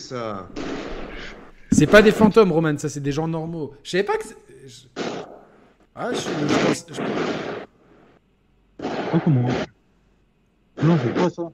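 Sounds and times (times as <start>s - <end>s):
noise: 0.0s - 11.5s
speech: 0.1s - 0.9s, 1.8s - 5.0s, 6.0s - 7.6s, 9.1s - 9.7s, 10.8s - 11.5s
firecrackers popping outdoors: 0.5s - 2.6s, 5.0s - 5.4s, 6.2s - 7.7s, 8.8s - 9.7s.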